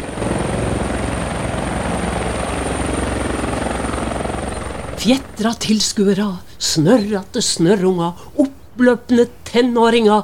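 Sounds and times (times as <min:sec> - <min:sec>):
helicopters landing with rotor and engine roar: 0:00.0 - 0:06.0
speech: 0:05.0 - 0:10.2.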